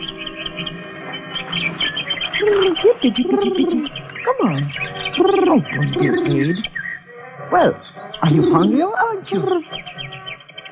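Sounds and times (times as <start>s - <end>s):
pigeons cooing in a tea garden: 1.4s - 7.0s, 7.6s - 10.2s
speech: 2.5s - 6.7s, 7.5s - 9.9s.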